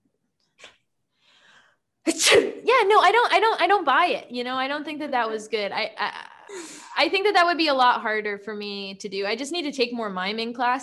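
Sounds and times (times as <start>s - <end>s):
person acting out a fake sneeze: 2.1s - 2.7s
speech: 2.3s - 10.8s.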